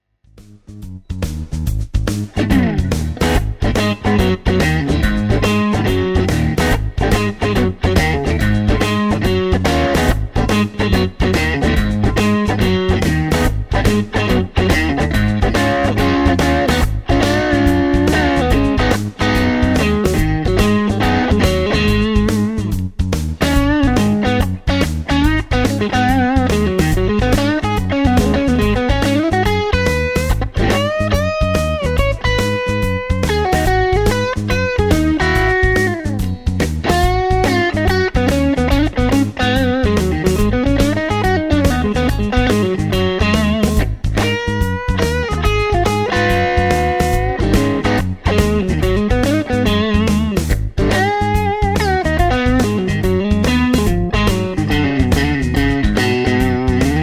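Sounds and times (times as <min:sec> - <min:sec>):
crunchy Strat electric guitar on neck and middle pickups: 0:00.4 - 0:57.0.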